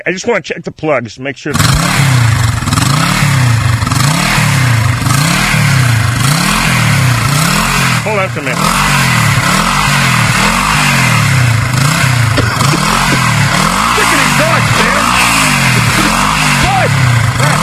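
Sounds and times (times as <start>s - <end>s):
speech: 0.0s - 2.5s, 8.1s - 9.0s
Harley-Davidson Softail Standard motorcycle engine idling and revving: 1.5s - 17.6s
laughter: 10.3s - 10.9s, 12.3s - 17.0s.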